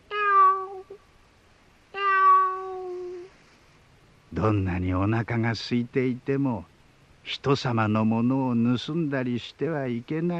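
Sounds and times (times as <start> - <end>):
stray kitten meowing: 0.0 - 1.0, 2.0 - 3.3
speech: 4.4 - 6.7, 7.3 - 10.3.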